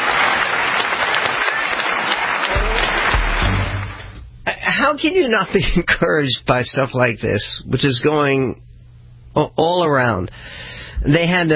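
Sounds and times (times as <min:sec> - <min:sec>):
large standing audience applauding: 0:00.0 - 0:04.2
speech: 0:04.8 - 0:08.7, 0:09.4 - 0:11.5.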